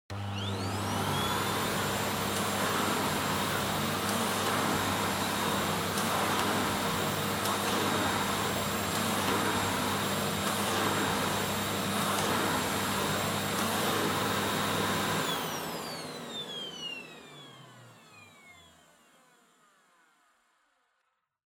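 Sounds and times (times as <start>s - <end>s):
vacuum cleaner vacuuming floor: 0.1s - 20.4s.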